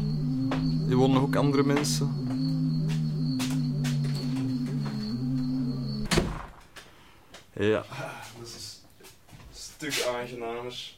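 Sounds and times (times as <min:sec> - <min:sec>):
mechanical hum: 0:00.0 - 0:07.2
speech: 0:00.5 - 0:02.2, 0:07.6 - 0:08.6, 0:09.8 - 0:10.9
door slamming shut: 0:06.0 - 0:06.8.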